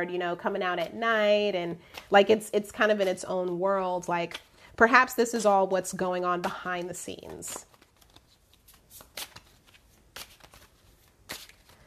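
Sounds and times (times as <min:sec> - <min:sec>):
speech: 0:00.0 - 0:07.7
Native American Tarot cards being shuffled: 0:01.8 - 0:11.8.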